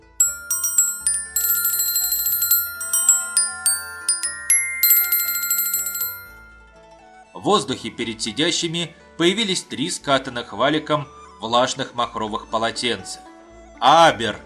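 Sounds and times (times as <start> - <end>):
small bells chiming: 0.0 - 6.8
speech: 7.4 - 14.4.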